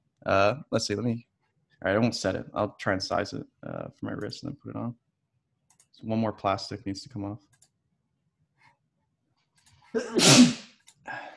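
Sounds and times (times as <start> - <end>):
speech: 0.2 - 5.0, 6.0 - 7.5, 9.9 - 11.2
sneeze: 10.0 - 10.7.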